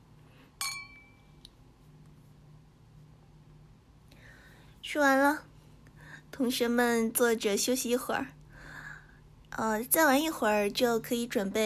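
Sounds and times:
low room hum: 0.0 - 11.6
beer glasses clinking in a birthday toast: 0.6 - 1.1
speech: 4.9 - 5.5, 6.4 - 8.4, 9.6 - 11.6.

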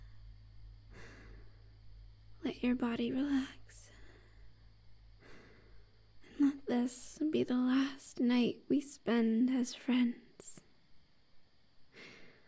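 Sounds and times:
soft slow breaths: 0.0 - 2.4, 3.2 - 6.4, 11.9 - 12.4
low steady hum: 0.0 - 12.4
speech: 2.4 - 3.8, 6.7 - 10.6.

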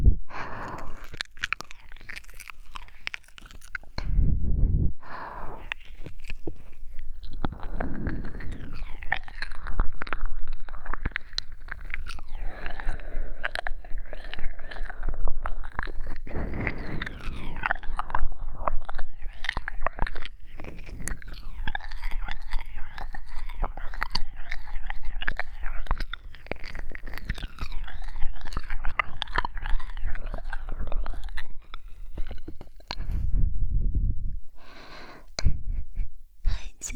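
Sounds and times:
mother making playful nibbling noises on a baby's ear: 0.3 - 33.5, 34.1 - 36.9
mother whispering breathily: 36.4 - 36.9.

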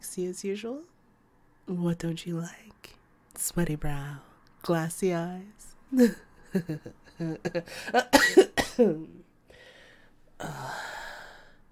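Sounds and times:
speech: 0.1 - 1.0, 1.7 - 9.2, 10.4 - 10.9
rough throaty coughs: 8.0 - 9.0.

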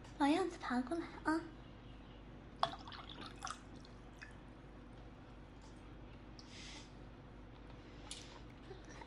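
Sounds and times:
speech: 0.2 - 1.6
water trickling and dripping into a cup: 2.6 - 4.4.

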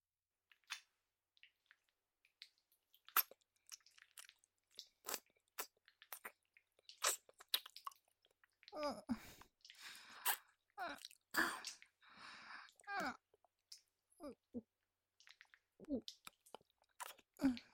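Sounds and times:
wet licking and sucking mouth sounds: 0.5 - 8.8, 9.4 - 12.0, 15.2 - 17.4.

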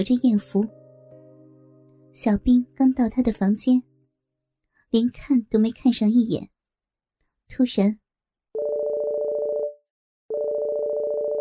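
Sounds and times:
speech: 0.0 - 0.8, 2.2 - 3.9, 4.9 - 6.5, 7.5 - 8.0
mobile phone ringing in electronic tone bursts: 8.6 - 11.3.

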